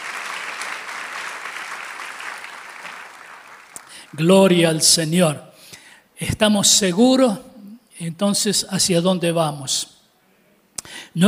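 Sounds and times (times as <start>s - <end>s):
church audience applauding: 0.0s - 4.3s
speech: 4.1s - 5.5s, 6.2s - 10.0s, 10.8s - 11.2s.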